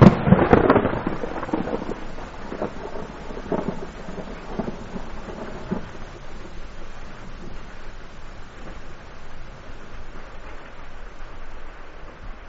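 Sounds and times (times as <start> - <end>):
monsoon thunder cracks and rumbling: 0.0 - 9.1
steady monsoon rain: 0.0 - 12.4.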